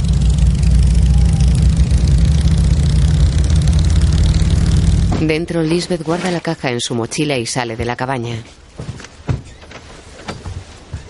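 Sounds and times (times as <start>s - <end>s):
motorcycles driving along a road near a cabin: 0.0s - 5.8s
speech: 5.2s - 8.9s.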